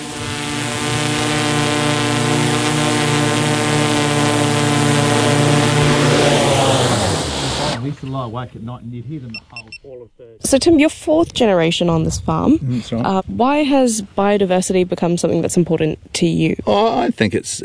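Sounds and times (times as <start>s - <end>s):
drone propellers buzzing: 0.0s - 7.9s
speech: 8.3s - 17.6s.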